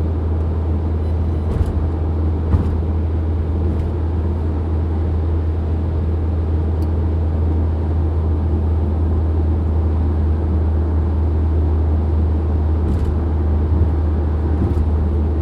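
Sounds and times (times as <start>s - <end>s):
old car engine droning on a highway at night: 0.0s - 15.4s
tire noise rumble on a highway: 0.0s - 15.4s.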